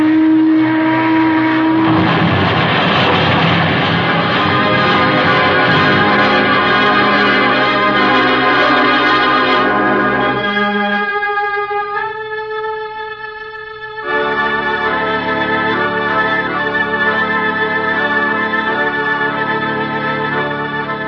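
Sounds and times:
passenger steamboat low horn tone: 0.0s - 13.0s, 13.6s - 21.0s
passenger steamboat engine churning rumble: 0.6s - 9.1s.

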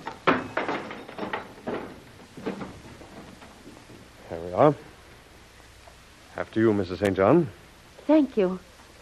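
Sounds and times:
heavy latch and handle scraping rattles: 0.0s - 4.0s
door opening with clunks: 0.0s - 4.1s
speech: 4.4s - 4.9s, 6.4s - 8.7s.

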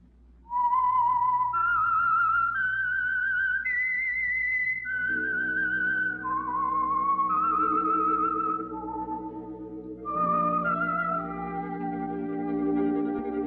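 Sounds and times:
whistled melody: 0.5s - 13.4s
low orchestral strings: 4.9s - 13.4s.

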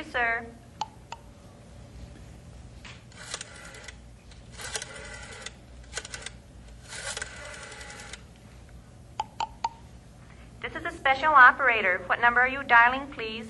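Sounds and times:
rotary telephone being dialed: 3.1s - 8.3s
person speaking: 10.6s - 13.4s.

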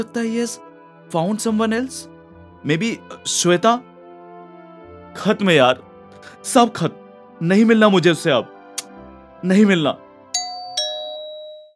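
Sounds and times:
speech: 0.0s - 3.9s, 5.2s - 8.6s, 9.4s - 10.0s
two-note ding-dong doorbell chime: 10.4s - 11.7s.

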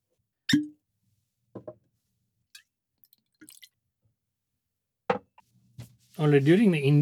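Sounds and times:
whisky poured into a glass in Scotland: 3.0s - 3.8s
speech: 6.2s - 7.0s.

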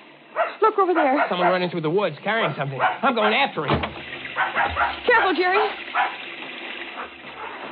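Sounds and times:
dog snarling and barking while attacking a man: 0.3s - 1.7s, 2.4s - 3.5s, 4.3s - 6.3s, 6.9s - 7.7s
speech: 0.6s - 6.2s.

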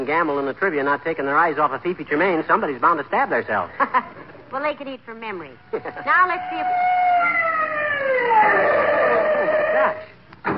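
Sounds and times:
speech: 0.0s - 7.4s, 8.0s - 8.9s
ambulance siren wailing: 5.6s - 10.1s.

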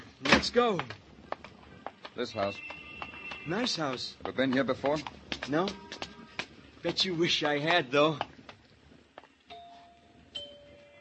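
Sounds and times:
speech: 0.4s - 1.0s, 2.2s - 2.8s, 3.4s - 6.0s, 6.8s - 8.3s
two-note doorbell chime: 9.5s - 10.9s.

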